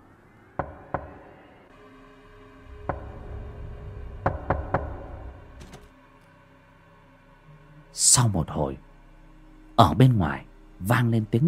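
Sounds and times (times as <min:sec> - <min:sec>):
knocking on a bedroom door: 0:00.6 - 0:01.2, 0:02.8 - 0:03.5, 0:04.2 - 0:05.8
speech: 0:08.0 - 0:08.9, 0:09.8 - 0:11.4.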